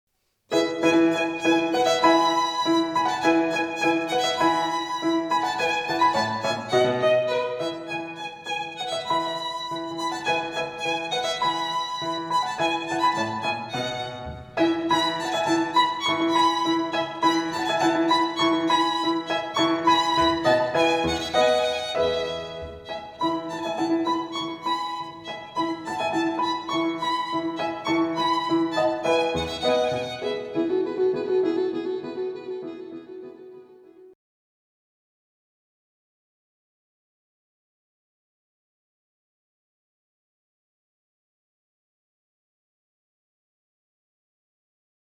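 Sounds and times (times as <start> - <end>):
piano: 0.5 - 34.2
violin: 0.5 - 34.2.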